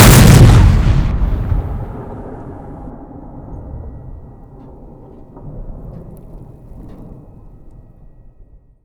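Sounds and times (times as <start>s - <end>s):
M1A1 cannon fire: 0.0s - 6.0s.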